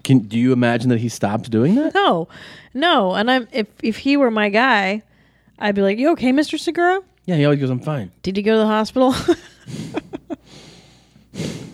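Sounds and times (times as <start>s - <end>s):
speech: 0.0s - 10.0s
heavy rasping breathing: 2.3s - 2.7s, 9.6s - 11.7s.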